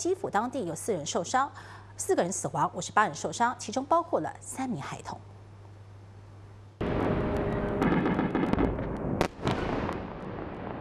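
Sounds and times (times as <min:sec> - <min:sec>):
speech: 0:00.0 - 0:05.3
powerful explosion from ballistic missile strikes on Kyiv: 0:06.8 - 0:10.7
roaring rumble with crackling pops after missile strikes: 0:06.8 - 0:10.7
sharp blast from missile strikes: 0:06.8 - 0:10.7.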